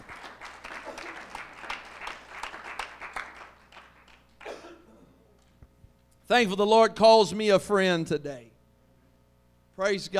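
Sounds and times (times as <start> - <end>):
congregation applauding: 0.0 - 4.6
speech: 6.3 - 8.5, 9.8 - 10.1.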